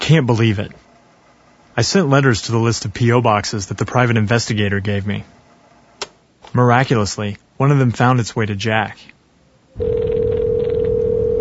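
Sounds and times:
low rumble and hiss: 0.0s - 11.3s
speech: 0.1s - 0.8s, 1.8s - 5.4s, 6.5s - 9.2s, 9.8s - 10.1s
telephone ring tone on an outgoing call: 9.8s - 11.3s.

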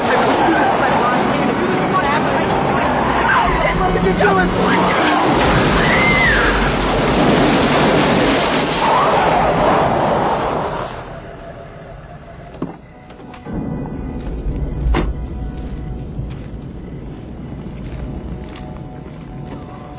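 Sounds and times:
car engine rumbling as the vehicle pulls away: 0.0s - 19.9s
road and wind noise: 0.0s - 19.9s.

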